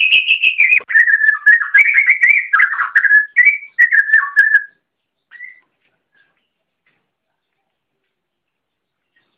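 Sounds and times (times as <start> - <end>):
Oriental magpie-robin singing a rich fluid whistled warble: 0.0 - 5.7.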